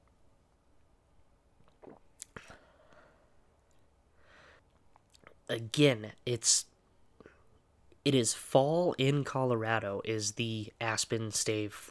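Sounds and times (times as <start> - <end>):
person sipping whiskey from a glass: 1.6 - 2.7
speech: 5.5 - 6.7, 8.0 - 11.8.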